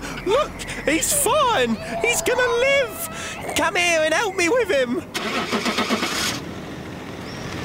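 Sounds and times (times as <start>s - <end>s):
speech: 0.4s - 6.2s
car engine cranking with rapid rhythmic pulses: 5.1s - 6.5s.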